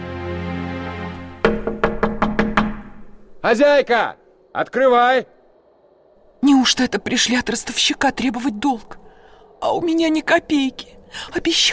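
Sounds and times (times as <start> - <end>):
sharp knocks on window glass: 1.4 - 3.0
speech: 3.4 - 5.3, 6.4 - 9.0, 9.6 - 11.7.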